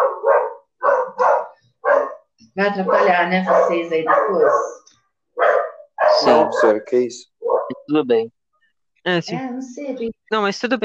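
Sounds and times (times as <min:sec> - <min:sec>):
dog barking: 0:00.0 - 0:07.9
speech: 0:02.6 - 0:04.8, 0:06.2 - 0:07.3, 0:07.9 - 0:08.4, 0:09.0 - 0:10.8.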